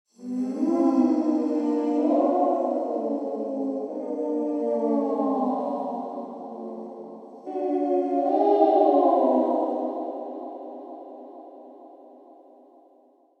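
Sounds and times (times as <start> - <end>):
spooky ghost wail: 0.2 - 11.4.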